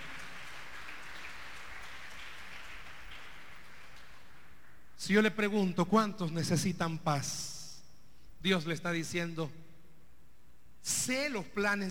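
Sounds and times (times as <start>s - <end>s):
audience applauding: 0.0s - 4.9s
speech: 5.0s - 7.5s, 8.4s - 9.6s, 10.8s - 11.8s.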